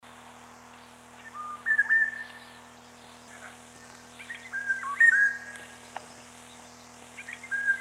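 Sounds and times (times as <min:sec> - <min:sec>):
Eurasian golden oriole song: 0:01.2 - 0:02.5, 0:04.2 - 0:05.5, 0:07.2 - 0:07.7.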